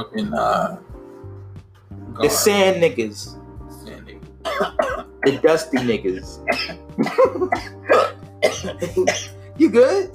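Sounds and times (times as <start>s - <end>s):
speech: 0.0s - 1.0s, 2.2s - 3.4s, 4.5s - 7.8s, 8.6s - 10.1s
harsh raspy coughing fit: 4.4s - 9.6s.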